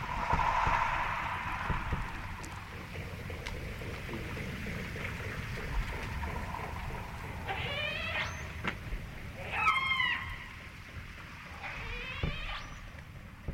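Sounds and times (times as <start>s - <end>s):
low underwater rumble: 0.0s - 13.5s
orca rising squealing calls: 7.4s - 8.6s, 9.4s - 10.6s.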